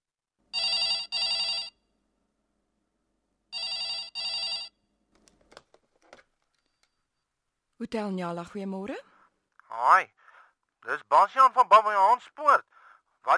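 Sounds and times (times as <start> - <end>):
telephone ringing after a call is placed on a phone: 0.5 - 1.8, 3.5 - 4.8
speech: 7.8 - 9.1, 9.8 - 10.2, 10.8 - 13.3.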